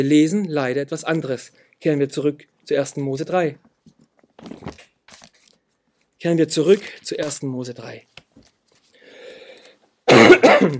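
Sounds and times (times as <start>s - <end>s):
speech: 0.0s - 3.7s, 6.2s - 8.2s, 10.4s - 10.7s
person coughing: 10.1s - 10.7s
throat clearing: 10.1s - 10.7s.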